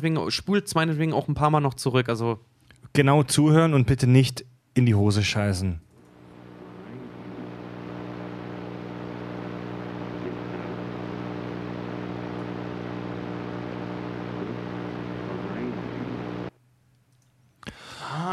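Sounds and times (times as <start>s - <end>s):
speech: 0.0s - 5.9s
underlying electrical hum: 5.2s - 17.9s
heavy static hiss in ghost voice recording: 6.0s - 16.6s.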